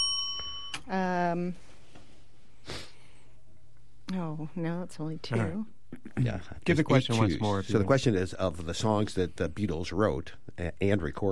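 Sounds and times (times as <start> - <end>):
quiz bell ding for a correct answer: 0.0 - 0.8
speech: 0.8 - 1.7, 4.1 - 11.2.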